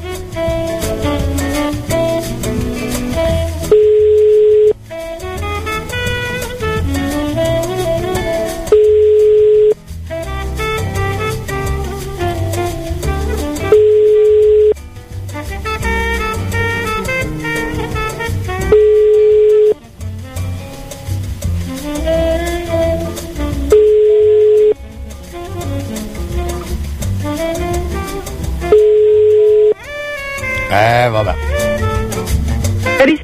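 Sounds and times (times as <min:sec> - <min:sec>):
busy music-like sound: 0:00.0 - 0:33.2
telephone ringing tone: 0:03.8 - 0:04.8, 0:13.7 - 0:14.7, 0:28.8 - 0:29.8.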